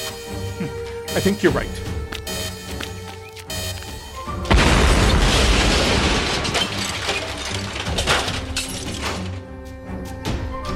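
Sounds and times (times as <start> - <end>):
speech: 0.6 - 1.9
explosion of a hibernation suspension pod's anti-tampering mechanism: 4.5 - 6.7
crackling shattering debris: 4.5 - 9.5.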